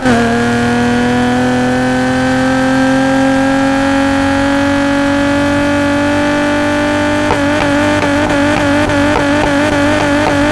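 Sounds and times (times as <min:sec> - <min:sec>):
vehicles: 0:00.0 - 0:10.5.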